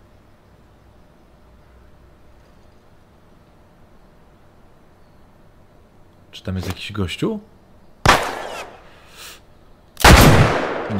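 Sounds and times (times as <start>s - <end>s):
speech: 6.4s - 7.6s
gunfire from a weapon in a video game: 8.0s - 8.9s, 10.0s - 10.9s.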